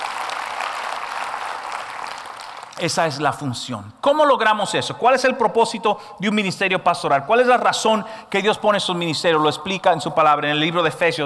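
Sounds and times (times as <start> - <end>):
congregation clapping in a church service: 0.0 - 3.6
speech: 2.8 - 11.2.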